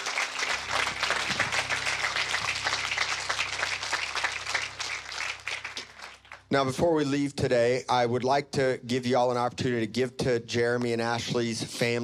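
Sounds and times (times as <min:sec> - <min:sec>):
low sustained hum from instruments or room sound: 0:00.0 - 0:06.5
large crowd applauding: 0:00.0 - 0:06.6
speech: 0:06.5 - 0:12.0.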